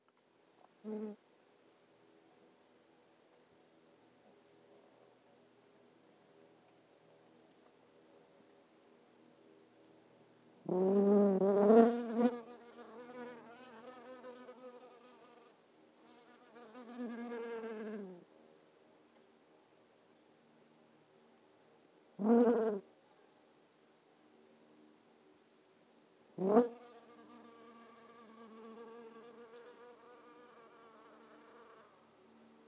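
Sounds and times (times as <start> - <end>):
bee in a garden: 0.8 - 1.2, 10.6 - 19.2, 22.2 - 23.4, 26.4 - 32.6.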